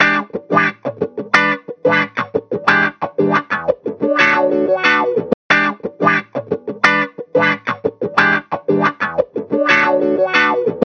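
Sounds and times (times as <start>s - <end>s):
guitar with psychedelic stereo flanger effect: 0.0s - 10.8s.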